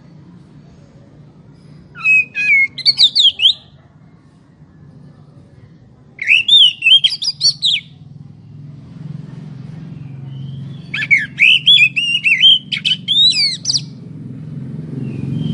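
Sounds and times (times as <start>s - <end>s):
low rumble of traffic: 0.0s - 15.5s
Oriental magpie-robin singing varied whistles and slurred notes: 1.8s - 3.8s, 6.2s - 8.0s, 9.8s - 14.1s, 15.0s - 15.5s.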